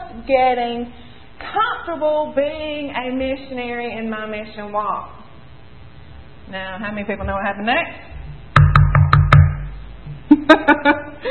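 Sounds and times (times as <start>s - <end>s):
speech: 0.2s - 5.2s, 6.5s - 8.1s, 10.5s - 11.2s
knocking on a hard surface: 8.6s - 10.2s.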